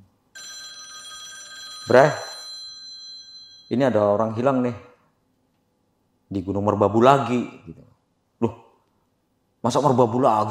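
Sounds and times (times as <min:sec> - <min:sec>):
telephone bell ringing: 0:00.4 - 0:03.8
speech: 0:01.8 - 0:02.3, 0:03.7 - 0:04.9, 0:06.3 - 0:08.6, 0:09.6 - 0:10.5.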